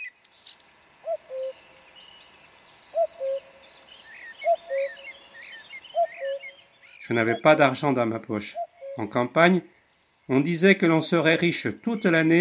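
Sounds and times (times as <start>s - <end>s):
common cuckoo calling at a forest edge: 0.0s - 9.7s
faint songbirds twittering: 0.0s - 12.3s
speech: 7.1s - 12.3s.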